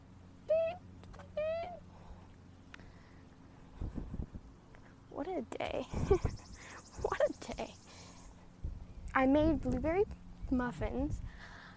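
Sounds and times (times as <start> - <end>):
steady low mechanical hum: 0.0 - 11.7
speech: 5.3 - 6.5, 9.2 - 11.2
birds hooting outdoors: 6.0 - 8.5.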